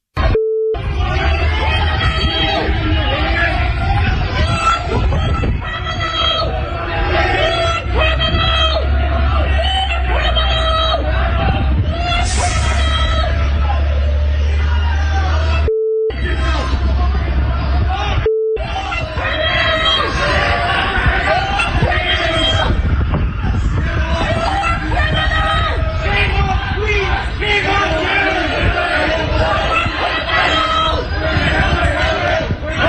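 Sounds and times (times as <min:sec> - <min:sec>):
short electronic beeps: 0:00.2 - 0:00.8, 0:15.7 - 0:16.2, 0:18.2 - 0:18.7
loud rowdy crowd heckling, booing and jeering outdoors: 0:00.2 - 0:32.8
low rumble: 0:00.2 - 0:32.8.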